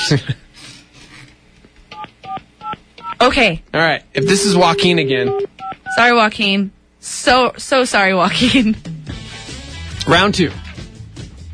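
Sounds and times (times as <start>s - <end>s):
speech: 0.1s - 0.5s, 3.3s - 8.9s, 10.0s - 10.6s
phone keypad dialing tones: 4.2s - 5.9s.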